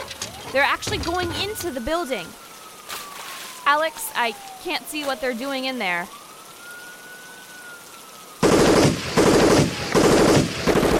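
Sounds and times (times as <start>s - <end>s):
speech: 0.5s - 2.4s, 3.7s - 6.2s
police automatic gunfire inside a building: 8.4s - 10.9s.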